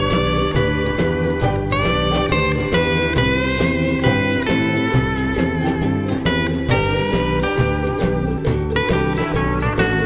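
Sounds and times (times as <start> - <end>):
ukulele: 0.0 - 10.0.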